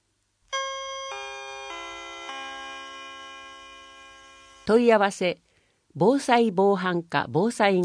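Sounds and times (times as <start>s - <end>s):
descending four-note public address announcement chime: 0.5s - 4.7s
speech: 4.7s - 5.4s, 6.0s - 7.8s.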